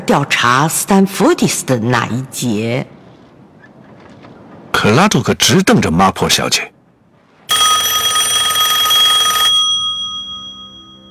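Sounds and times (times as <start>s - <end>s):
speech: 0.1s - 3.0s, 4.8s - 6.8s
bright metallic telephone bell ringing: 7.5s - 11.0s.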